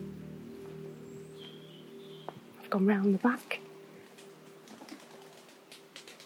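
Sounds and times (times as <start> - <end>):
speech: 2.8 - 3.7
startled pigeons' wings clattering in flight: 4.6 - 6.2.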